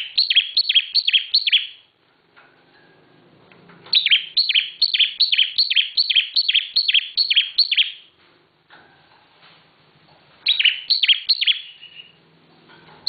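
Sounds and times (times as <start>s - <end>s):
Bar-winged prinia song of sharp, descending chirped notes: 0.0s - 1.9s, 3.9s - 8.1s, 10.4s - 12.2s.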